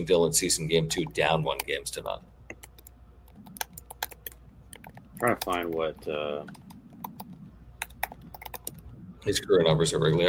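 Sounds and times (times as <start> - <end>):
speech: 0.0 - 2.3, 5.2 - 6.6, 9.2 - 10.2
typing on a computer keyboard: 2.5 - 5.9, 6.5 - 8.8.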